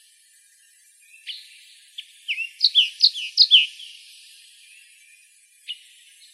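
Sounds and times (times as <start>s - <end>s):
olive warbler chip calls in Arizona: 1.2s - 4.1s.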